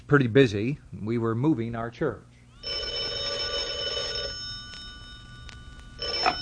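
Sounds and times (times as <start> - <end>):
speech: 0.1 - 2.3
telephone bell ringing with a buzzing tone: 2.5 - 6.4.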